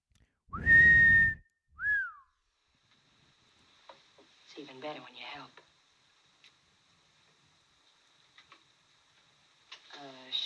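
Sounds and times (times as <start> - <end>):
person whistling: 0.5 - 2.2
speech: 4.6 - 5.7.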